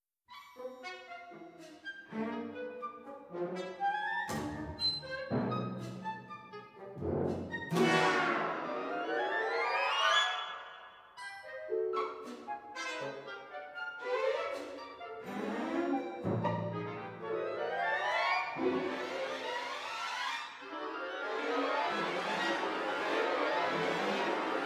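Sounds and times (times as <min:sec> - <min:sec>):
orchestra playing a lyrical concerto: 0:00.8 - 0:24.6.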